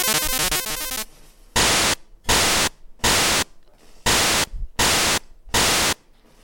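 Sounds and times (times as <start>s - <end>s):
buzzy chiptune tones: 0.0s - 3.4s, 4.1s - 6.0s
white-noise bursts from a Game Boy sound generator noise channel: 0.0s - 6.0s.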